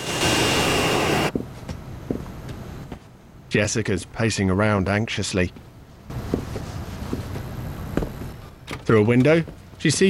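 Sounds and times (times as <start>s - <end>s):
jet engine roar with high whine on a runway: 0.0s - 1.3s
speech: 3.5s - 5.7s, 8.9s - 10.0s.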